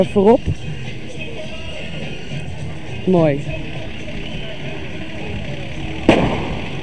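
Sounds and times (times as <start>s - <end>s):
speech: 0.0s - 0.8s, 3.1s - 3.6s
steady hiss of outdoor noise: 0.0s - 6.8s
firework bang: 6.0s - 6.8s.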